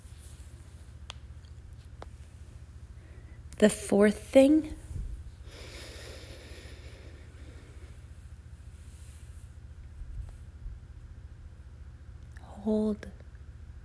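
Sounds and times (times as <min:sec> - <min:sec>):
speech: 0:03.6 - 0:04.8, 0:12.7 - 0:13.2
slow exhaling breath during a guided breathing exercise: 0:05.4 - 0:08.2.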